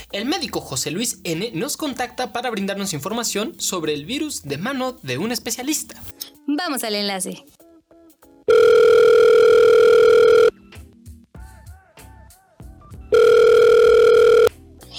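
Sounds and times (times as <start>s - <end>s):
speech: 0.1s - 7.6s
loud steady electronic tones of a phone call connecting: 8.5s - 10.5s, 13.1s - 14.5s.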